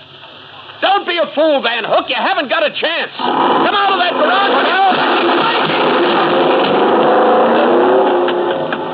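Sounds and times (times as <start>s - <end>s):
speech: 1.2s - 6.4s
car engine running inside a garage: 3.2s - 8.9s.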